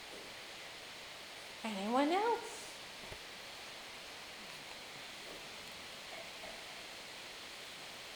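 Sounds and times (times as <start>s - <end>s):
steady soft rainfall: 0.0s - 8.1s
speech: 1.6s - 2.5s.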